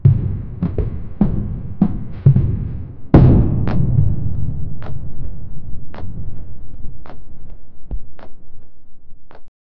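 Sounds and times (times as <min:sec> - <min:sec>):
giant pterosaur footsteps: 0:00.0 - 0:09.5.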